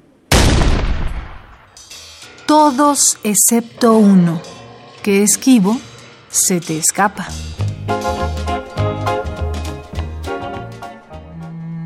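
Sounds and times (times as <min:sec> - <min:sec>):
cannon shot: 0:00.3 - 0:01.8
speech: 0:02.5 - 0:08.5.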